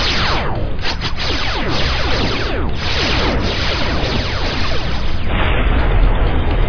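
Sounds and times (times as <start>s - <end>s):
sci-fi starship weapons fire and explosion from a direct hit: 0.0s - 6.6s.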